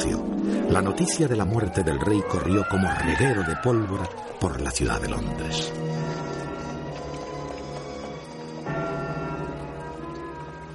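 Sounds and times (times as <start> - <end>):
speech: 0.7 - 6.2
bells ringing in London after the king's death: 5.5 - 10.7.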